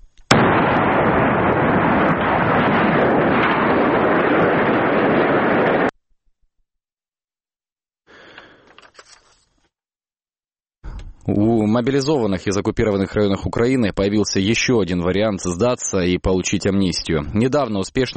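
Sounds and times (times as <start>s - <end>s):
faint rumbling debris noise: 0.0s - 5.9s
powerful explosion of a boiler house: 0.3s - 5.9s
speech: 11.8s - 18.1s.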